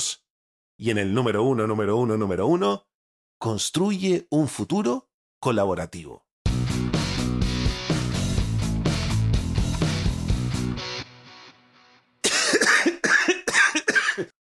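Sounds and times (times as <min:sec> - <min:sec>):
speech: 0:00.8 - 0:06.2
upbeat music: 0:06.5 - 0:11.1
person with a cold clearing throat: 0:12.2 - 0:14.4
person with a cold coughing: 0:12.2 - 0:14.4.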